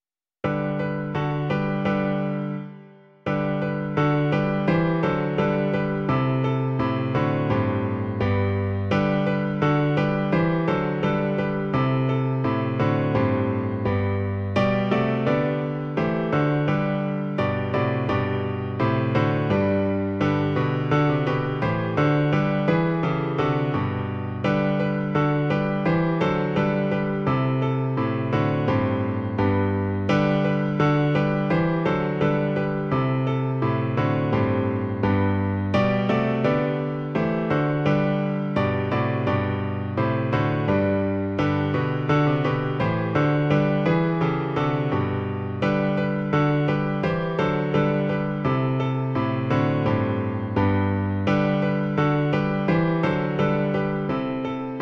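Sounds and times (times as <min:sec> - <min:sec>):
piano version of a piece: 0:00.4 - 0:54.7.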